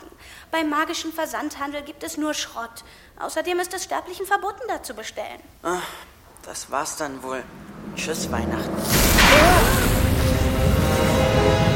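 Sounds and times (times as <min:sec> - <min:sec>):
speech: 0:00.5 - 0:09.8
thunder-and-lightning explosion effect: 0:07.9 - 0:11.7.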